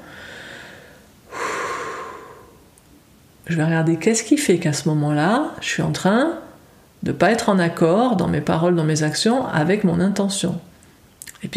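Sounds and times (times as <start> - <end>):
slow deep breath close to the microphone: 0.0 - 2.7
speech: 3.5 - 6.4, 7.0 - 10.7, 11.4 - 11.5.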